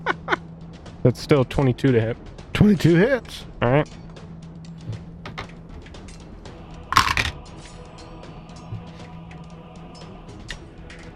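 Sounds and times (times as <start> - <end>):
speech: 1.0 - 4.0
dice rolling in a dice box: 7.0 - 7.4.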